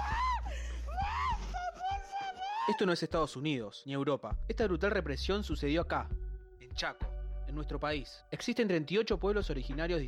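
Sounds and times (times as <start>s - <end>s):
woman screaming: 0.0s - 3.0s
speech: 2.7s - 10.0s.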